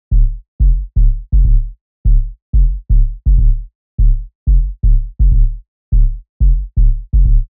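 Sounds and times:
bass loop groove: 0.1s - 7.4s.

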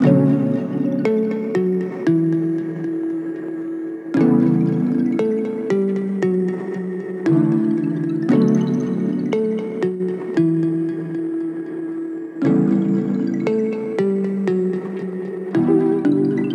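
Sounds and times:
mallet instrument in B minor: 0.0s - 11.8s, 12.4s - 16.5s.

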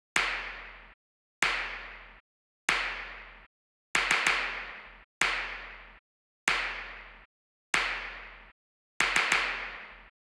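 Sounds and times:
dry claps: 0.2s - 0.8s, 1.4s - 2.0s, 2.7s - 3.2s, 4.0s - 5.7s, 7.8s - 8.2s, 9.0s - 9.8s.

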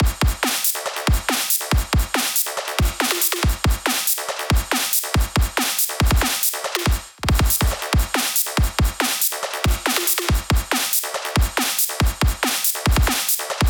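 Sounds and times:
full drum loop at 140 bpm: 0.0s - 13.6s.

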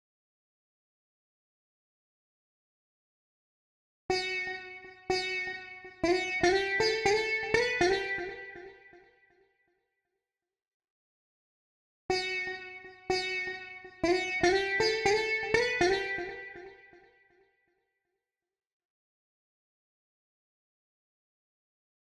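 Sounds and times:
sitar: 4.1s - 9.0s, 12.1s - 17.2s.

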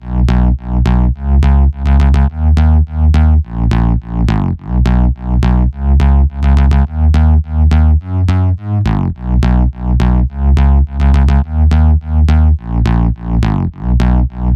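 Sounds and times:
bass loop in E at 105 BPM: 0.0s - 14.5s.

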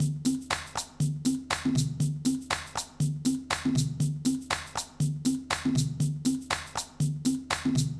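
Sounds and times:
beat: 0.0s - 7.9s.

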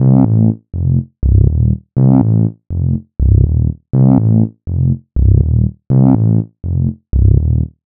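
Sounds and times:
freak bass synth in C minor: 0.0s - 7.8s.

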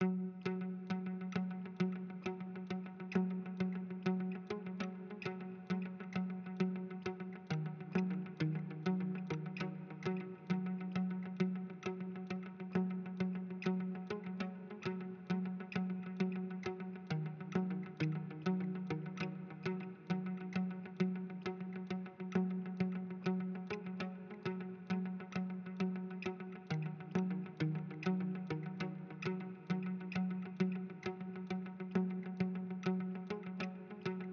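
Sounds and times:
bouncy guitar in F major: 0.0s - 34.3s.

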